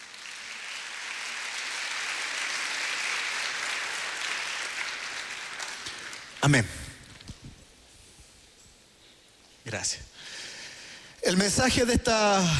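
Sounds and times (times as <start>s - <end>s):
audience applauding during a sermon: 0.0s - 7.3s
speech: 6.4s - 6.8s, 9.7s - 10.4s, 11.2s - 12.5s.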